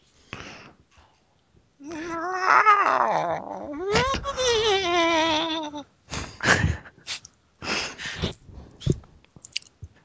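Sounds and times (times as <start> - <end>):
person imitating a yowling cat: 1.8 - 5.8.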